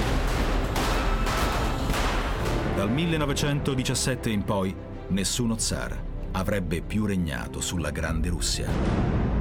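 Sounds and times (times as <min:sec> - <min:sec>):
gunfire in a dark cellar during an execution: 0:00.0 - 0:02.7
speech: 0:02.8 - 0:09.3.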